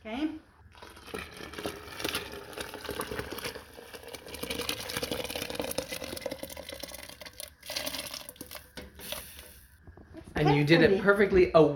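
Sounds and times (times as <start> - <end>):
green salsa poured onto pozole broth sizzling in a hot pan: 8.3 - 9.8
speech: 10.4 - 11.7.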